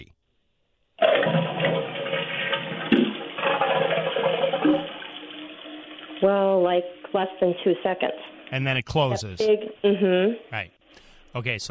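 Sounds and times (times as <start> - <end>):
toilet flushing: 1.0 - 8.5
speech: 6.2 - 11.6.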